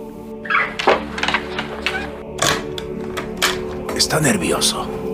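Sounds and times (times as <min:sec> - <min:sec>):
door latches and bolts being worked clicking: 0:00.4 - 0:04.3
speech: 0:04.0 - 0:05.0.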